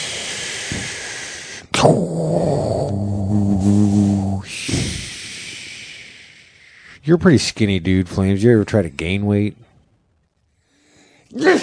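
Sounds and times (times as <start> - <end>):
speech: 1.8 - 2.5, 7.1 - 9.7, 11.3 - 11.6
loud sneeze after a rising intake of breath: 3.6 - 5.1, 11.3 - 11.6.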